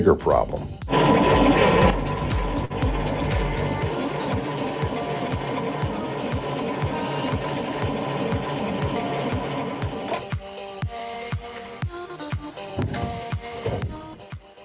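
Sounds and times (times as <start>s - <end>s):
speech: 0.0s - 1.3s
car engine cranking on a weak battery: 0.8s - 14.4s.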